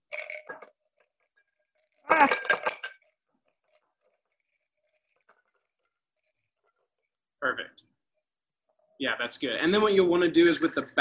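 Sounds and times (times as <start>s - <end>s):
liquid poured into a glass over ice for a cocktail: 0.0s - 7.2s
ice clinking in a glass: 0.1s - 6.4s
speech: 2.2s - 2.7s, 9.3s - 10.9s.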